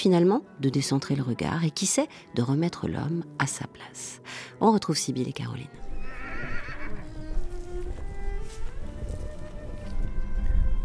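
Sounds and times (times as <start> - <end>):
speech: 0.0 - 6.6
wind: 5.6 - 10.8
hooves of Przewalski's horse stallions galloping down a hill: 5.8 - 10.8
Przewalski's horse stallion whinnying: 6.0 - 7.2.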